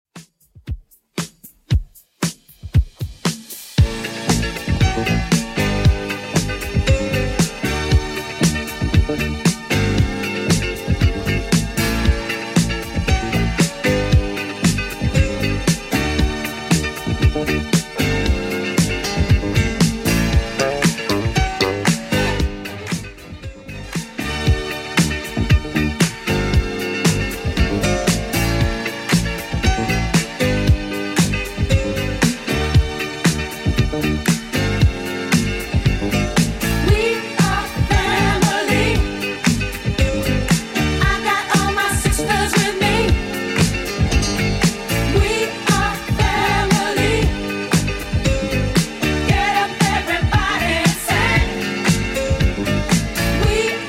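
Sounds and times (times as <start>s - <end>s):
70s style music loop at 116 bpm: 0.1s - 53.8s.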